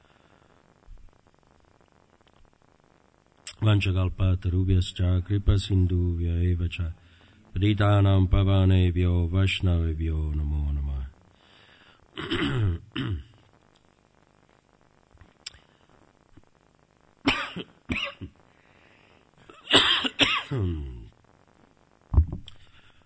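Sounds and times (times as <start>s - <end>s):
speech: 3.6s - 7.0s, 7.6s - 10.8s
person clearing throat: 12.2s - 13.4s, 17.3s - 18.4s, 19.5s - 21.1s
person coughing: 12.2s - 13.4s, 17.3s - 18.4s, 19.5s - 21.1s.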